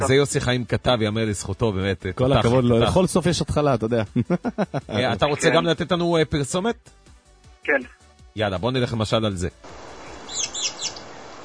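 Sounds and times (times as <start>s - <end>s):
speech: 0.0s - 9.9s
laughter: 4.0s - 5.7s
faint hiss: 9.6s - 11.4s
quick high-pitched bird chirps: 10.2s - 11.1s.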